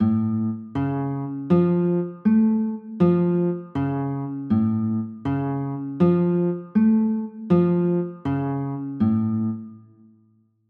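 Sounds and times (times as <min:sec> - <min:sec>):
A augmented chords: 0:00.0 - 0:10.1.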